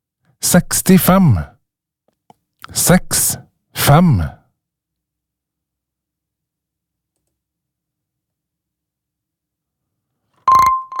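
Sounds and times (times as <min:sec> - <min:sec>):
speech: 0:00.5 - 0:01.5, 0:02.7 - 0:04.4
telephone bell ringing: 0:10.5 - 0:10.9.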